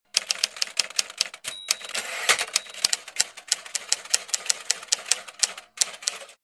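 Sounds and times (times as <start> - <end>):
electric typewriter typing: 0.1 - 6.4
electric typewriter return bell: 1.4 - 3.2.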